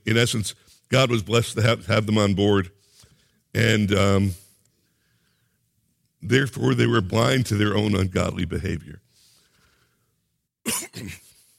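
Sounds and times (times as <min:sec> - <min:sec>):
speech: 0:00.1 - 0:02.8, 0:03.6 - 0:04.4, 0:06.2 - 0:09.0, 0:10.6 - 0:11.2
man coughing: 0:10.6 - 0:11.5
man clearing his throat: 0:10.7 - 0:11.4.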